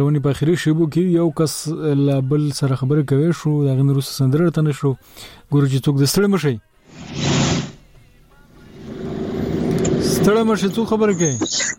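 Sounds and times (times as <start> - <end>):
speech: 0.0 - 7.3, 10.3 - 11.7
motorcycle engine roar: 8.7 - 10.5.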